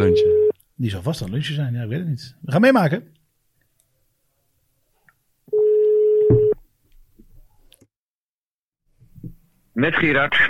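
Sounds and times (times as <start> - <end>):
ringback tone on an outgoing phone call: 0.0 - 0.5, 5.5 - 6.6
speech: 0.0 - 3.2, 9.8 - 10.4.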